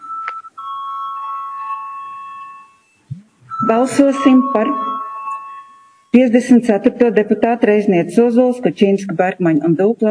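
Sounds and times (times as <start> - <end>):
electronic parliament voting bell chime: 0.0 - 7.0
speech: 3.7 - 4.9, 6.1 - 10.0.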